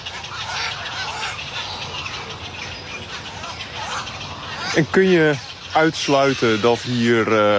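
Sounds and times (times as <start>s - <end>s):
many birds honking and squawking at a breeding colony: 0.0s - 7.5s
speech: 4.8s - 7.5s.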